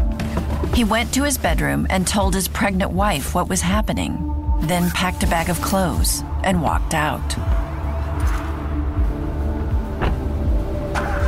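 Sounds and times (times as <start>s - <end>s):
car engine rumbling as the car pulls away: 0.0s - 11.2s
speech: 0.8s - 7.5s
faint clunks and rattles: 9.6s - 11.2s.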